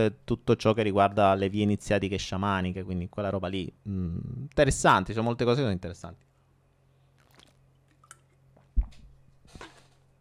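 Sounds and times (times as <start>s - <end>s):
speech: 0.0s - 6.3s
person sipping and swallowing purified water from a small carton: 7.2s - 8.4s.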